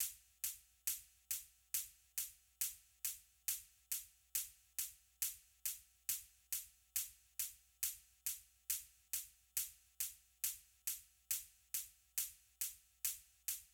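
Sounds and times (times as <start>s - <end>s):
closed hi-hats: 0.0s - 13.7s.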